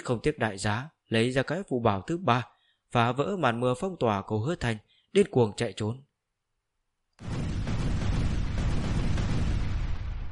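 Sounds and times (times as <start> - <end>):
speech: 0.0 - 6.1
explosion echoing: 7.2 - 10.3.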